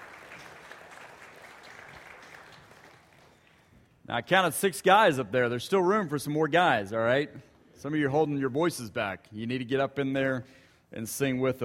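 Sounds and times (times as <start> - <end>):
large crowd applauding: 0.0 - 3.7
speech: 4.1 - 11.6.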